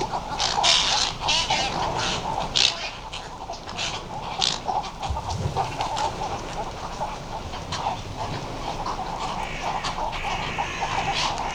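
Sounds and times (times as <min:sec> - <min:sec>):
many birds chattering: 0:00.0 - 0:11.5
Western cattle egret harsh croaking calls: 0:04.6 - 0:11.5.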